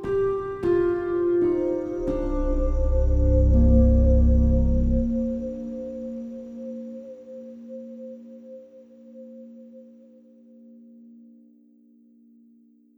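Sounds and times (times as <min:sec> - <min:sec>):
piano pads: 0:00.0 - 0:11.2.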